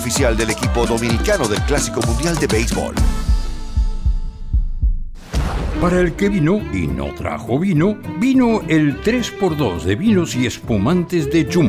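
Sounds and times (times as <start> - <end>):
speech: 0.0 - 3.4, 5.8 - 11.6
deep booming heartbeat thumping: 0.0 - 6.5.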